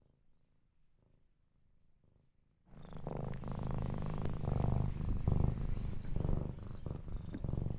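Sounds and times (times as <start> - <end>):
cat purring: 2.7 - 7.7.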